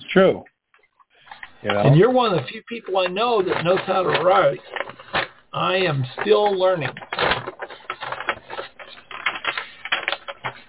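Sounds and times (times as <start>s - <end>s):
speech: 0.1s - 0.5s, 1.6s - 4.8s, 5.5s - 7.3s
paper crinkling and rustling: 3.0s - 10.6s.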